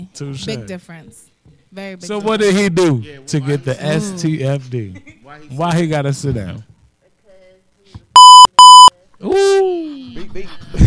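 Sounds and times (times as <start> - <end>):
speech: 0.0 - 6.7, 9.2 - 10.8
censor bleeps: 8.1 - 9.0.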